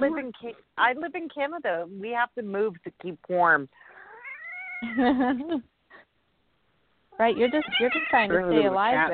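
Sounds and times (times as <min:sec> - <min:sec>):
speech: 0:00.0 - 0:03.9, 0:04.8 - 0:05.7, 0:07.2 - 0:09.1
upset cat caterwauling and yowling: 0:04.0 - 0:05.0, 0:07.3 - 0:08.3.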